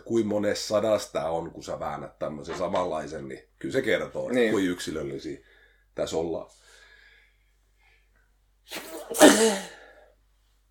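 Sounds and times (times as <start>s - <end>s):
speech: 0.1s - 6.7s, 8.7s - 9.8s
person sneezing: 8.7s - 9.9s.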